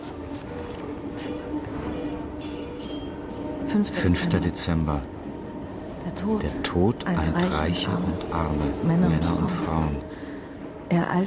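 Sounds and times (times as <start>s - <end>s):
subway train riding along: 0.0s - 11.2s
speech: 3.7s - 5.2s, 6.2s - 10.2s, 10.9s - 11.2s.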